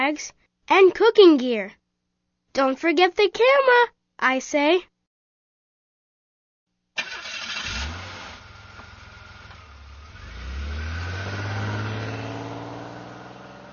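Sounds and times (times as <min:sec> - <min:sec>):
speech: 0:00.1 - 0:01.8, 0:02.6 - 0:04.9
car engine starting with a quick crank: 0:07.0 - 0:13.7.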